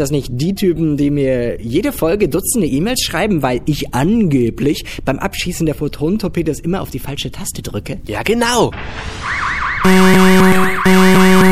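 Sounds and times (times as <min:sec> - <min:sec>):
speech: 0:00.0 - 0:11.1
wailing alarm siren of a bioreactor malfunction: 0:08.8 - 0:11.4.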